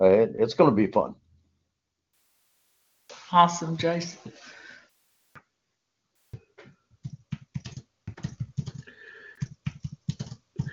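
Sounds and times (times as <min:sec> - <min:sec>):
speech: 0:00.0 - 0:01.2, 0:03.3 - 0:04.5
typing on a computer keyboard: 0:07.0 - 0:10.7.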